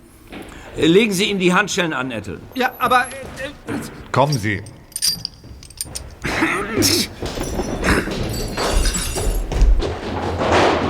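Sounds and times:
speech: 0:00.8 - 0:04.8, 0:06.4 - 0:07.1
mechanical rattling and scraping: 0:04.1 - 0:10.8
window glass shattering as a person crashes through: 0:04.3 - 0:06.2, 0:07.2 - 0:09.6.

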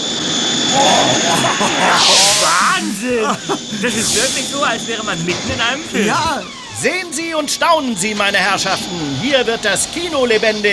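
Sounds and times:
loud mechanical roar with high-pitched whine of time-travel car departing: 0:00.0 - 0:10.7
laughter: 0:00.7 - 0:10.7
speech: 0:00.8 - 0:02.3, 0:03.0 - 0:10.7.

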